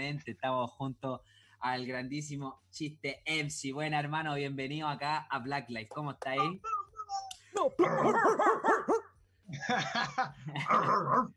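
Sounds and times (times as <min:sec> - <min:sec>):
speech: 0:00.0 - 0:06.7, 0:07.6 - 0:11.3
dog barking in high-pitched yapping bursts: 0:07.8 - 0:09.2, 0:10.7 - 0:11.3.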